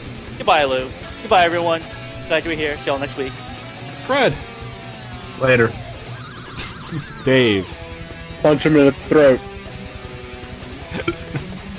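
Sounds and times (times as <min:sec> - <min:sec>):
speech: 0:00.4 - 0:04.5, 0:05.4 - 0:05.8, 0:06.9 - 0:07.8, 0:08.4 - 0:09.5, 0:10.9 - 0:11.2
laughter: 0:06.3 - 0:07.8
short throaty burp: 0:10.8 - 0:11.6
small gulping hiccup-like blip: 0:10.9 - 0:11.5.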